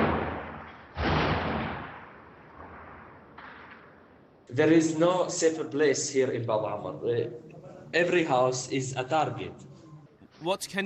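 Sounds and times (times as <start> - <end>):
shelling explosion boom: 0.0 - 3.2
steady noise: 0.0 - 10.8
speech: 4.5 - 9.7, 10.4 - 10.8.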